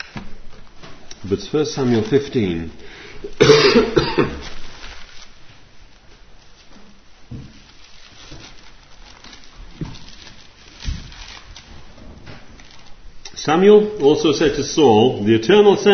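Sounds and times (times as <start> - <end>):
speech: 1.2 - 4.2, 13.6 - 15.9
loud harsh cough: 3.2 - 4.5.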